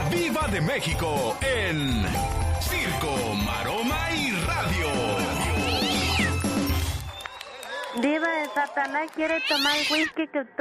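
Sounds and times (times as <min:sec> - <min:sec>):
speech: 0:00.2 - 0:05.4, 0:08.0 - 0:10.5
cat meowing loud and drawn-out: 0:05.6 - 0:06.4, 0:09.3 - 0:10.1.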